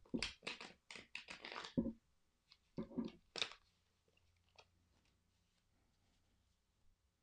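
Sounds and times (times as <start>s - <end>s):
Rider-Waite-Smith tarot deck being shuffled: 0.2s - 1.9s, 2.5s - 3.7s.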